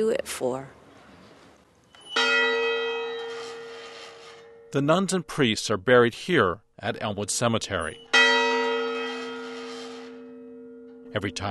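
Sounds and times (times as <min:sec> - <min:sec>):
speech: 0:00.0 - 0:00.8, 0:04.7 - 0:08.1, 0:11.1 - 0:11.4
cemetery bell ringing: 0:02.0 - 0:04.9, 0:07.6 - 0:11.4.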